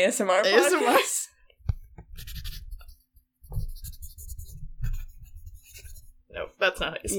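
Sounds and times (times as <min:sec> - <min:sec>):
speech: 0:00.0 - 0:01.3, 0:06.4 - 0:07.1
pen scratching on paper while writing: 0:02.0 - 0:06.2.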